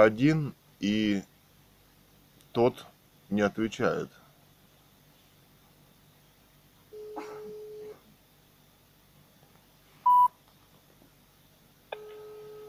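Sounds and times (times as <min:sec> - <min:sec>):
speech: 0:00.0 - 0:01.3, 0:02.6 - 0:04.2
short high telephone beep: 0:10.1 - 0:10.3
telephone call tones as a number is dialed: 0:12.0 - 0:12.6.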